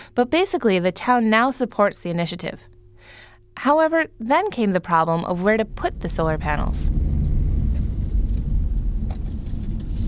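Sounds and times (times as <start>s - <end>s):
speech: 0.2s - 7.0s
faint rattles and thumps from bumpy surface: 5.6s - 10.0s
car rolling along a rough dirt road: 5.7s - 10.0s.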